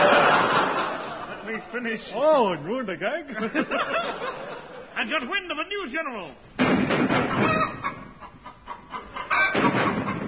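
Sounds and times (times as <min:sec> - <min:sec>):
laughter: 0:00.0 - 0:01.9, 0:03.3 - 0:05.0
speech: 0:01.6 - 0:08.0
flock of chickens clucking and squawking: 0:07.2 - 0:10.2.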